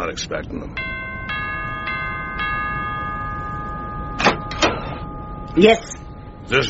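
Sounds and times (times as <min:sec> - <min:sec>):
speech: 0:00.1 - 0:00.9, 0:05.6 - 0:06.6
doorbell ringing with a bright electronic tone: 0:00.8 - 0:06.6.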